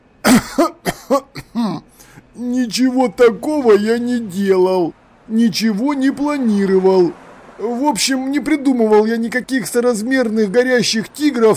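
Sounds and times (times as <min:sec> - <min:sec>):
man clearing his throat: 0:00.2 - 0:02.0
speech: 0:00.4 - 0:01.4, 0:02.7 - 0:11.5.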